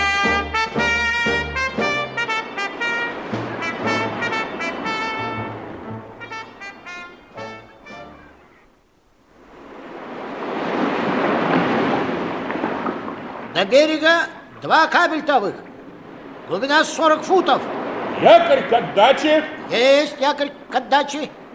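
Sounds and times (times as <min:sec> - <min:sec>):
sustained horn-like tones: 0:00.0 - 0:08.8
sea surf rushing: 0:00.0 - 0:21.5
speech: 0:13.6 - 0:15.6, 0:16.5 - 0:21.4.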